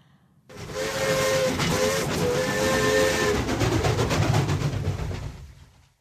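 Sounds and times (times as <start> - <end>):
steam train whistle blasts: 0.5 - 3.5
steam train rumbling at night: 0.5 - 5.9.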